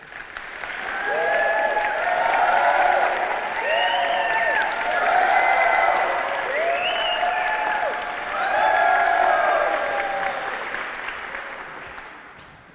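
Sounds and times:
audience applause rolling as a wave across the crowd: 0.0 - 12.7.

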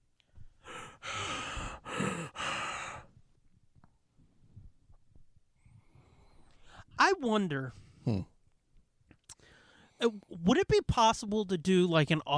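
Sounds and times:
heavy breathing in a film scene: 0.3 - 3.3, 5.6 - 7.0, 7.7 - 8.3, 9.3 - 10.0
speech: 7.2 - 8.3, 10.0 - 12.3.

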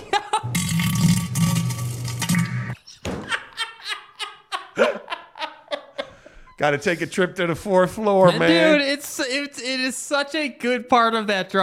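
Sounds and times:
bursts of laughter: 0.0 - 0.5, 3.2 - 6.4
buzzy fart sound effect echoing off toilet: 0.5 - 2.8
speech: 6.6 - 11.6.

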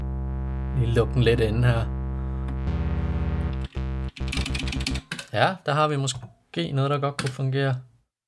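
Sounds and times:
sustained synthesizer tone with dense harmonic buzz: 0.0 - 4.2
speech: 0.8 - 2.0, 5.3 - 7.9.

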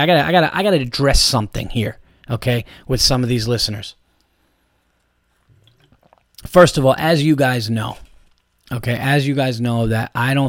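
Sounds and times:
speech: 0.0 - 4.0, 6.4 - 8.1, 8.7 - 10.4
person sipping water with a soft wet slurp: 4.2 - 6.5
faint swallowing: 4.9 - 6.5.

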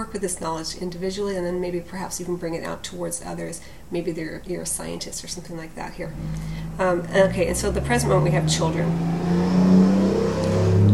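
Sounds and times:
speech: 0.0 - 9.6
loud car engine revving: 6.0 - 10.9.

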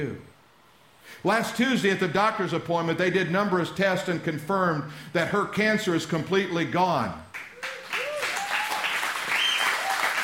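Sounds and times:
speech: 0.0 - 0.3, 1.0 - 7.2
crowd applauding: 7.3 - 10.2
faint whoops: 7.5 - 10.2.

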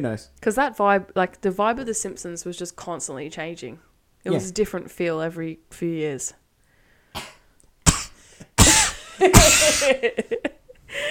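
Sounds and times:
speech: 0.0 - 6.4, 9.2 - 11.0
person fake coughing: 7.2 - 10.1.

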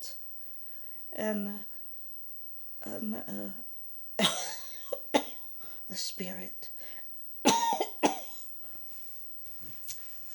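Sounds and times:
speech: 1.2 - 1.7, 2.8 - 4.4, 5.9 - 6.9
woman coughing with a raspy tail: 4.2 - 5.4, 7.5 - 8.4.

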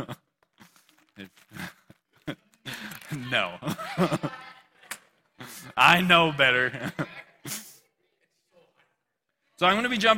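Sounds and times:
pages of paper Bibles rustling and crinkling: 0.4 - 3.3
laughter: 1.5 - 7.8
speech: 3.2 - 4.4, 5.8 - 7.1, 9.6 - 10.1.

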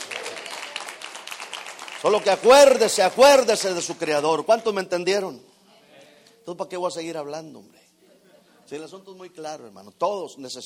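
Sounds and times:
crowd applauding: 0.0 - 4.3
speech: 2.0 - 5.5, 6.4 - 7.8, 8.7 - 10.6.

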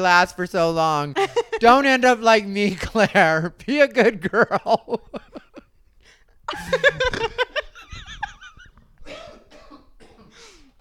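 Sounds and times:
speech: 0.0 - 5.2, 6.5 - 7.4
laughter: 1.2 - 1.7, 3.2 - 5.7, 6.5 - 8.7
coughing from phlegm in the throat: 6.5 - 10.8.

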